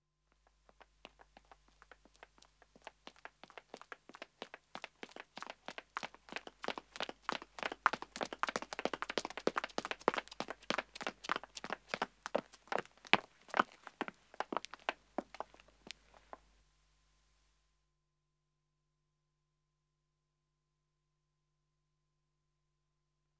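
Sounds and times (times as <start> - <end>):
footsteps of a man and a woman running on pavement: 0.6 - 16.4.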